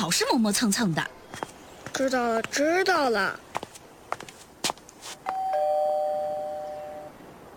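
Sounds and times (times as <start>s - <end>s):
speech: 0.1s - 1.2s, 2.0s - 3.5s
doorbell chiming: 5.3s - 7.1s.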